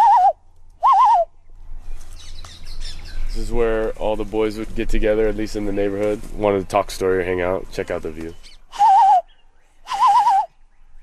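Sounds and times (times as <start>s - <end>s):
bird calling outdoors: 0.0s - 3.6s, 6.6s - 11.0s
speech: 3.4s - 8.5s.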